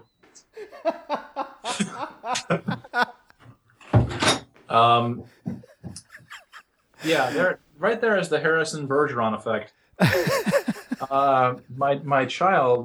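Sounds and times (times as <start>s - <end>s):
speech: 0.4s - 1.2s, 2.5s - 2.7s, 4.7s - 5.4s, 7.1s - 12.8s
people laughing: 0.6s - 3.3s, 4.9s - 7.6s, 10.0s - 11.7s.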